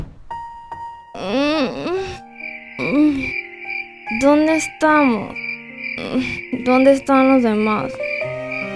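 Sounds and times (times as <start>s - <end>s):
woman waking up inside a car yawning: 1.2s - 3.4s, 6.0s - 6.5s
faint electronic tones: 1.2s - 8.0s
speech: 2.9s - 3.4s, 4.1s - 8.1s.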